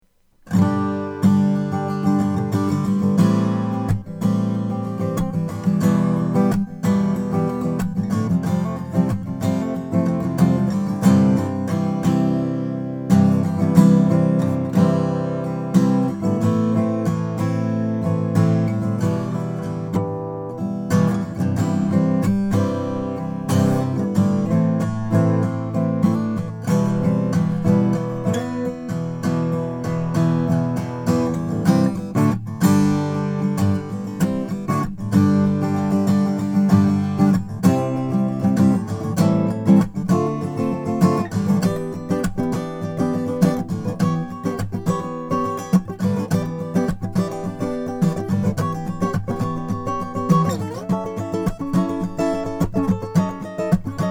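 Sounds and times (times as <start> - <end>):
acoustic guitar with bearclaw spruce top playing: 0.0 - 54.0.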